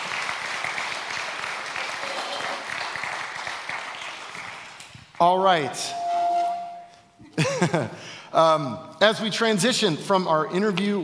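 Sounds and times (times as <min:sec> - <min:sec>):
audience applause: 0:00.0 - 0:04.9
speech: 0:05.2 - 0:06.0, 0:07.6 - 0:11.0
laughter: 0:07.2 - 0:08.1.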